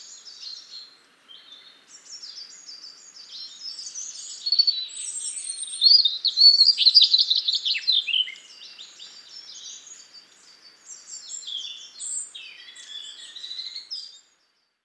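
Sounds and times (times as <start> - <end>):
European robin Erithacus rubecula singing: 0.0 - 14.3.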